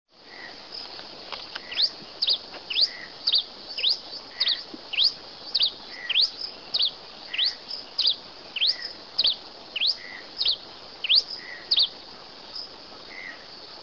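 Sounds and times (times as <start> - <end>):
Lanio pileatus calling: 1.4 - 12.0, 13.1 - 13.5.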